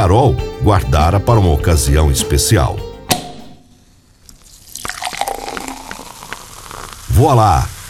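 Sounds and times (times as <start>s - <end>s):
speech: 0.0s - 2.9s, 7.2s - 7.8s
short sharp tap on a champagne glass: 3.1s - 3.7s
champagne fizzing and gurgling as it is poured into a glass: 4.3s - 7.8s.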